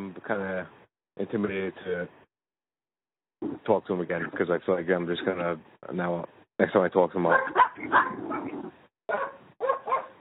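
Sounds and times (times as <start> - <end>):
speech: 0.3 - 2.2, 3.4 - 9.4
pet dogs barking and whimpering: 7.3 - 10.1.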